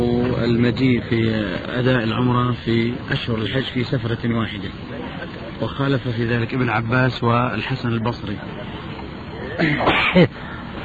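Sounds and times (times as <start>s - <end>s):
speech: 0.4s - 4.9s, 5.6s - 8.9s, 9.6s - 10.5s
person sneezing: 9.5s - 10.3s.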